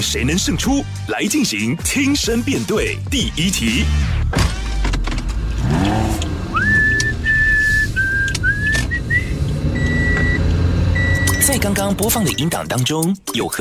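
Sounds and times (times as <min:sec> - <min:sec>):
speech: 0:00.0 - 0:04.6, 0:11.6 - 0:13.5
steady car engine rumble: 0:04.1 - 0:12.7
clunks inside a car: 0:04.3 - 0:11.7
person whistling a short bright radio station jingle inside a car: 0:06.5 - 0:09.3.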